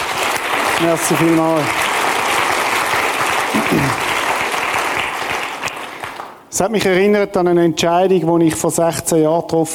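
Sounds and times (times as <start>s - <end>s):
audience applause: 0.0s - 6.4s
speech: 0.8s - 1.8s, 3.7s - 4.0s, 6.5s - 9.7s
person cheering: 3.5s - 4.1s.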